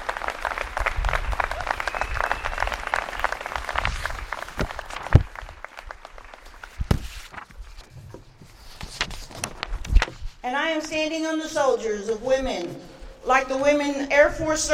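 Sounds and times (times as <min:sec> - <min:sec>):
large audience applauding: 0:00.0 - 0:06.8
individual claps: 0:00.0 - 0:06.9
speech: 0:10.5 - 0:14.7.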